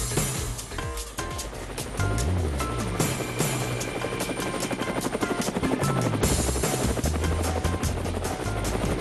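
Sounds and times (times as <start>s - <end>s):
helicopter flying with thumping rotor and loud engine whine: 0.2s - 9.0s.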